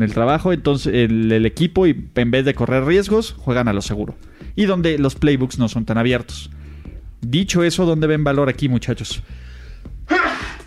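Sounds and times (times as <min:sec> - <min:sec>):
speech: 0:00.0 - 0:06.6, 0:07.2 - 0:10.2
sneeze: 0:10.1 - 0:10.6.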